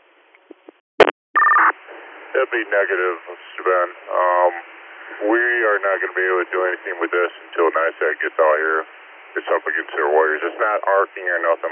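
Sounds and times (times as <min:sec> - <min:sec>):
electronic alert tone over a radio channel: 0:01.0 - 0:01.7
faint radio hiss: 0:01.7 - 0:11.7
speech: 0:02.4 - 0:11.7.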